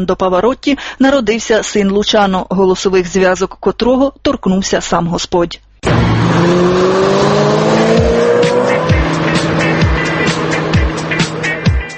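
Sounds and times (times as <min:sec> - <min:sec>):
speech: 0:00.0 - 0:07.3
sports car tire noise: 0:05.8 - 0:11.7
sports car engine revving as it races by: 0:05.8 - 0:11.9.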